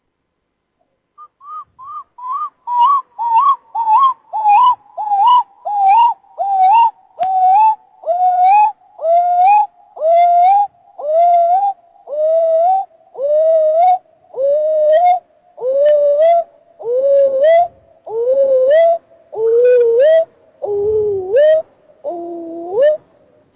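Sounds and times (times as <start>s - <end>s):
screech owl call slowed to one-fifth speed: 1.2s - 23.4s.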